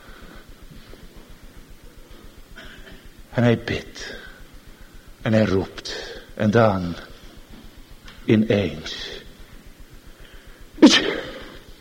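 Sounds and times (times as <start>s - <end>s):
speech: 3.4s - 4.2s, 5.2s - 7.1s, 8.3s - 9.2s
small boy sneezing: 10.8s - 11.6s.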